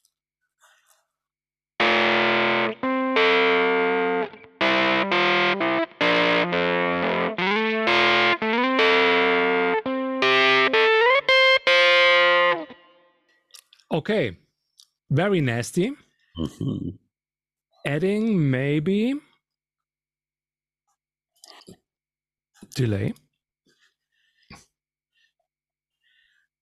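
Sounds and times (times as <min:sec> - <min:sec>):
heavily distorted electric guitar reamped through an amp profiler playing a riff: 0:01.8 - 0:12.9
speech: 0:14.0 - 0:14.4, 0:15.1 - 0:17.0, 0:17.8 - 0:19.3, 0:22.7 - 0:23.2.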